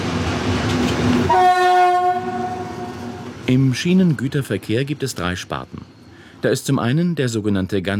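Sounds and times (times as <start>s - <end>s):
Class 298 diesel locomotive rumbling past: 0.0s - 6.4s
loud sustained diesel locomotive horn blast: 1.2s - 3.4s
speech: 3.5s - 7.9s.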